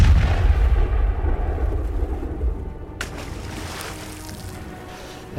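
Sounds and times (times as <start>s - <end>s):
heavy cannon blast: 0.0s - 3.4s.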